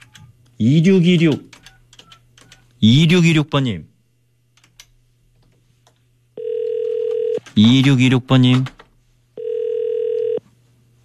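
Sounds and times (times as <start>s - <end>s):
speech: 0.6s - 1.5s, 2.8s - 3.9s, 7.6s - 8.8s
electronic telephone ringback tone: 6.4s - 7.4s, 9.4s - 10.4s
quiet phone line hiss: 9.4s - 10.4s.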